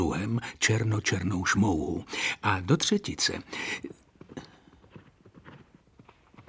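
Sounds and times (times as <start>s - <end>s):
speech: 0.0s - 4.0s
horse galloping through sedge and brush: 3.4s - 6.4s.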